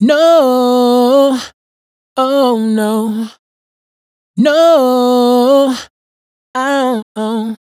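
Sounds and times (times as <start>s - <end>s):
dry raw vocals riff: 0.0s - 1.6s, 2.2s - 3.4s, 4.4s - 5.9s, 6.6s - 7.6s.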